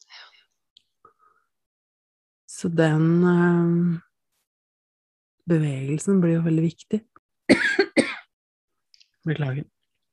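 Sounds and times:
speech: 0:02.6 - 0:04.1, 0:05.5 - 0:07.6, 0:09.2 - 0:09.7
person coughing: 0:07.5 - 0:08.3.

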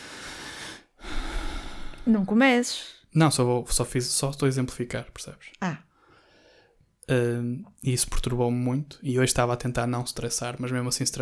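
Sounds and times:
person imitating heavy intense breathing: 0:00.0 - 0:02.1
speech: 0:02.1 - 0:05.9, 0:07.1 - 0:11.1.

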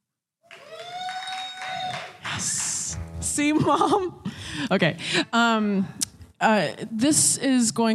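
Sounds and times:
drawn-out cheer: 0:00.5 - 0:02.2
audience applauding: 0:00.5 - 0:03.0
speech: 0:03.4 - 0:07.9.

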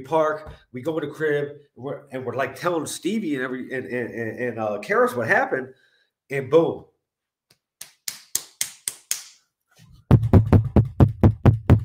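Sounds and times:
speech: 0:00.0 - 0:06.9
knocking on a house door: 0:10.1 - 0:11.8.

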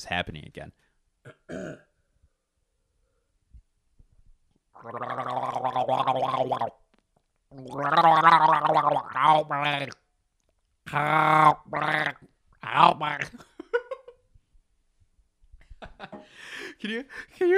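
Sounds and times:
speech: 0:00.0 - 0:01.9, 0:04.8 - 0:06.8, 0:07.5 - 0:10.0, 0:10.9 - 0:13.5, 0:16.0 - 0:17.5
person gargling water: 0:04.8 - 0:06.8, 0:07.5 - 0:10.0, 0:10.9 - 0:13.4
throaty noise: 0:04.8 - 0:10.1, 0:10.9 - 0:13.4.

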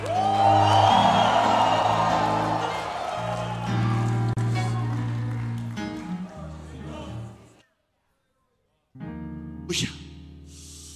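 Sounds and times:
church audience shouting and cheering in praise: 0:00.0 - 0:07.5.

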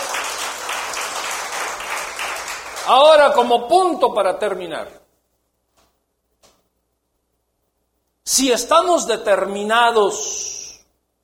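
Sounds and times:
crowd applauding: 0:00.0 - 0:03.4
speech: 0:02.9 - 0:05.0, 0:08.4 - 0:10.5.

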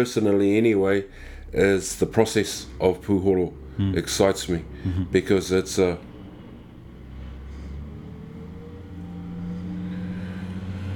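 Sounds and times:
speech: 0:00.0 - 0:06.1
heavy trucks driving past: 0:00.1 - 0:10.9.

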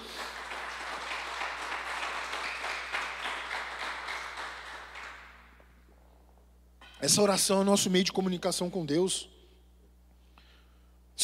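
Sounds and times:
audience applauding: 0:00.0 - 0:05.6
speech: 0:07.0 - 0:09.3.

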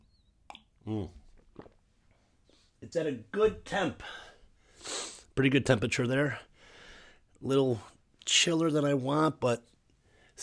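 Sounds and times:
faint mouth sounds: 0:00.0 - 0:01.9
speech: 0:00.9 - 0:01.2, 0:02.9 - 0:04.2, 0:05.4 - 0:06.5, 0:07.4 - 0:09.7
quick sip of hot tea with a soft slurp: 0:01.4 - 0:01.8.

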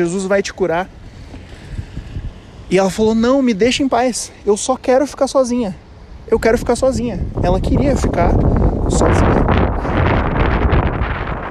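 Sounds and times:
speech: 0:00.0 - 0:01.0, 0:02.7 - 0:09.4
strong gust of wind against the microphone: 0:00.9 - 0:04.2, 0:06.1 - 0:11.5.

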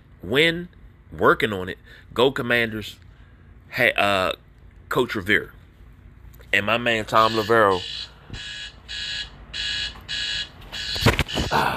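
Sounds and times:
speech: 0:00.2 - 0:03.0, 0:03.7 - 0:05.6, 0:06.5 - 0:09.0
electronic alarm beeping: 0:07.1 - 0:11.7.

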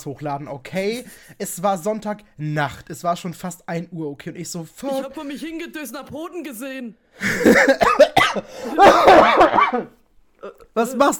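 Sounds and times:
speech: 0:00.0 - 0:11.1
person coughing in harsh fits: 0:07.3 - 0:10.6
laughter: 0:08.7 - 0:09.9.

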